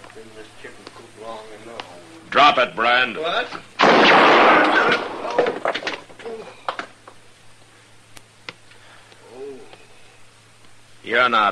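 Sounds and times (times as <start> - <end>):
speech: 0.2 - 6.6, 11.0 - 11.4
gunshot striking a gun: 3.8 - 5.8.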